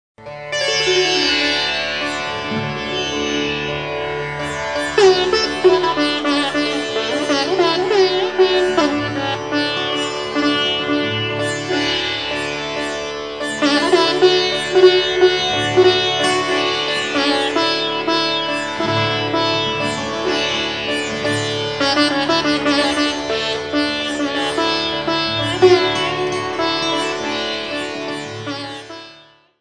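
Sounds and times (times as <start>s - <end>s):
Indian classical raga alaap: 0.2s - 29.5s.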